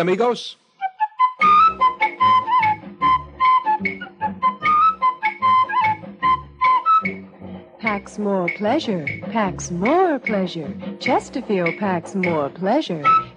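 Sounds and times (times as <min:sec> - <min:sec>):
speech: 0:00.0 - 0:00.6, 0:07.8 - 0:13.3
whistled cigarette jingle tune: 0:00.9 - 0:07.2, 0:13.0 - 0:13.3
lively band backing: 0:01.4 - 0:12.5.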